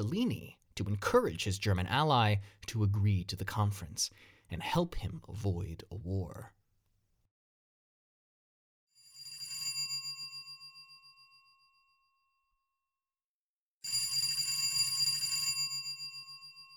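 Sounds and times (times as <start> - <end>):
speech: 0.0 - 6.6
old-fashioned telephone bell ringing: 9.0 - 12.3, 13.8 - 16.7.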